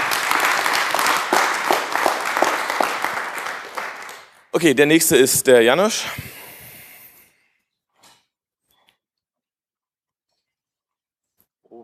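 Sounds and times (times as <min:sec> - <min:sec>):
room full of people applauding: 0:00.0 - 0:04.7
speech: 0:04.6 - 0:06.3.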